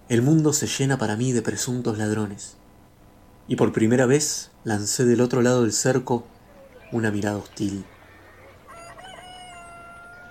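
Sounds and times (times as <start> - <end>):
low hiss: 0.0 - 10.2
speech: 0.1 - 2.6, 3.5 - 8.0
rooster crowing: 6.4 - 10.2.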